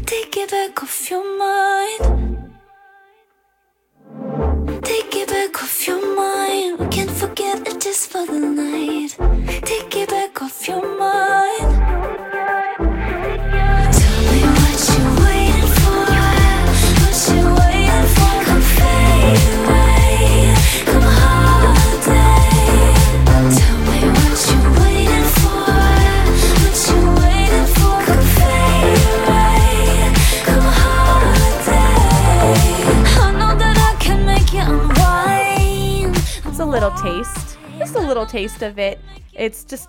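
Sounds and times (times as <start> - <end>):
free-spirited female lead vocal: 0.0 - 3.2, 4.8 - 39.8
speech: 0.1 - 2.3, 7.9 - 11.2, 38.1 - 39.8
full-band song with steady driving beat: 12.9 - 37.8.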